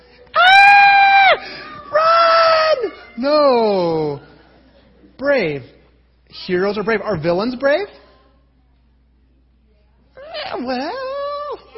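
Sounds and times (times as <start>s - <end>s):
man screaming in mock fright: 0.4s - 3.0s
speech: 3.2s - 4.3s, 5.4s - 5.7s, 6.4s - 8.0s, 10.6s - 11.0s.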